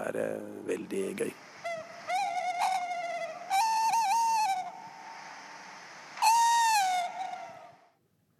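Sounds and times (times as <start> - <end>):
speech: 0.1 - 1.5
tawny owl hooting: 1.6 - 5.1, 6.1 - 7.9.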